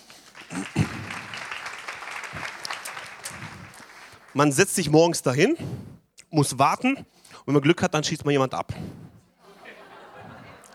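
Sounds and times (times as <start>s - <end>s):
crowd applauding: 0.0s - 4.6s
speech: 4.4s - 9.0s
laughter: 9.4s - 10.7s.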